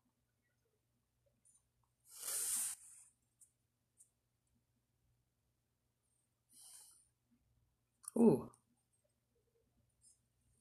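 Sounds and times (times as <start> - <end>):
person sniffing through the nose: 2.1 - 3.0
speech: 8.2 - 8.5.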